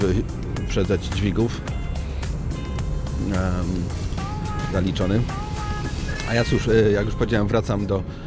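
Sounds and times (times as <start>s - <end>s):
speech: 0.0s - 1.8s, 3.2s - 4.1s, 4.7s - 5.4s, 6.3s - 8.2s
road and engine roar inside a moving car: 0.0s - 8.2s.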